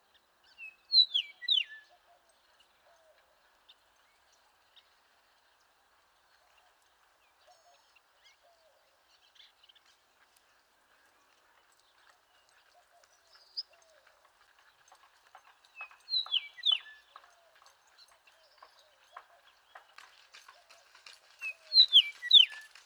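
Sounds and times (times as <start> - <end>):
Eastern meadowlark: 0.6 - 1.8, 15.8 - 17.1, 21.4 - 22.7.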